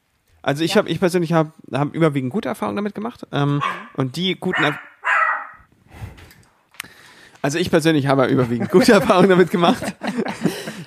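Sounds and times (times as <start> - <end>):
speech: 0.4 - 4.9, 7.4 - 10.6
dog giving a loud sharp bark: 3.6 - 5.7
laughter: 8.2 - 10.8.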